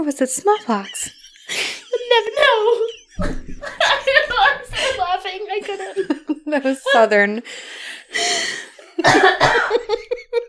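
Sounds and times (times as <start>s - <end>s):
speech: 0.0s - 1.2s, 2.1s - 3.5s, 5.2s - 10.4s
laughter: 0.0s - 7.4s, 8.7s - 10.4s
person taking a loud breathy inhale: 1.4s - 1.9s, 7.4s - 8.8s
person in a forceful fit of coughing: 9.0s - 9.9s.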